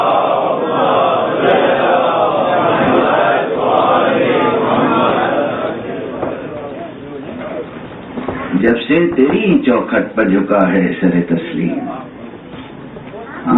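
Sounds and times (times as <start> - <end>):
large crowd reciting salawat loudly in unison: 0.0 - 9.8
speech: 8.9 - 12.0.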